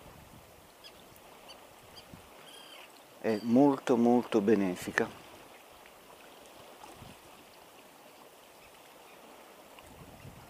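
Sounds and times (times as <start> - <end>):
waves washing on the seashore: 0.0 - 10.4
seagulls calling by the sea: 0.8 - 3.7
speech: 3.2 - 5.2.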